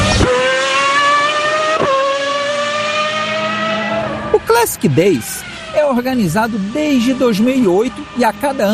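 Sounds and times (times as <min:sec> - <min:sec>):
historic race car engine screaming at a historic car motorsport event in central France: 0:00.0 - 0:08.7
speech: 0:04.6 - 0:08.7.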